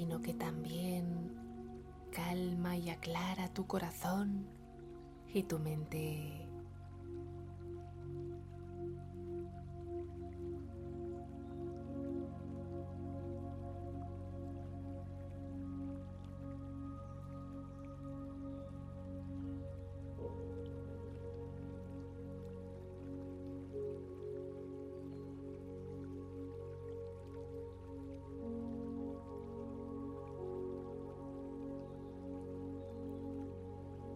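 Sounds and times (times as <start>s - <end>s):
speech: 0.0s - 1.4s, 2.1s - 4.6s, 5.3s - 6.5s
gently flowing stream water: 0.0s - 34.1s.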